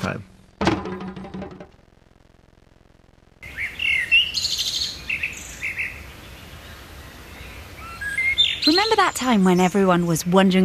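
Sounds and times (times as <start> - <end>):
speech: 0.0 - 0.3, 8.7 - 10.6
soft outdoor background: 0.0 - 10.6
birdsong with chirps and trills: 3.4 - 10.6.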